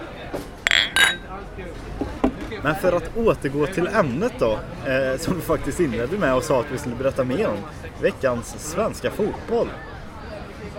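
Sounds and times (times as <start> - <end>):
glasses clinking in a toast: 0.7 - 1.3
speech: 2.6 - 9.9.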